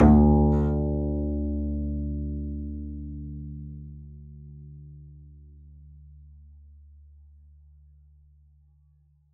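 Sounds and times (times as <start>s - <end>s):
double bass pizzicato on D2: 0.0s - 6.3s.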